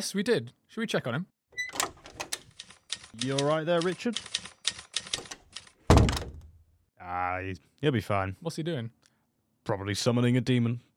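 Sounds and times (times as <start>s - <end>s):
speech: 0.0s - 1.4s, 3.1s - 4.5s, 7.1s - 9.0s, 9.6s - 10.9s
crisp typewriter key clacks: 1.8s - 5.8s
heavier typewriter clunk that rings briefly: 5.1s - 6.5s.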